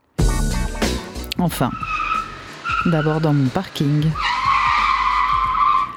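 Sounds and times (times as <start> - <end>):
low engine rumble: 0.0 - 5.9
speech: 1.4 - 2.0, 2.8 - 4.3
tires squealing on pavement: 1.4 - 5.9.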